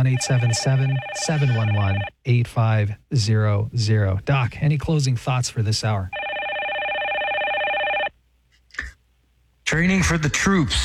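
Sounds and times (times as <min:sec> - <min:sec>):
short electronic telephone ring: 0:00.0 - 0:02.1, 0:06.2 - 0:08.1
speech: 0:00.0 - 0:06.2, 0:09.7 - 0:10.8.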